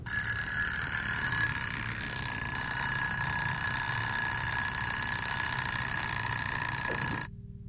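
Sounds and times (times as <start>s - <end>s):
shrill electric bell ringing: 0.0s - 7.3s.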